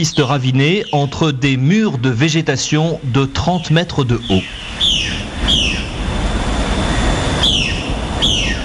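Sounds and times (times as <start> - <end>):
speech: 0.0 - 5.6
steady rushing hiss: 0.0 - 8.6
flocks of parrots squawking taking off over the jungle: 4.3 - 5.9, 7.4 - 8.6.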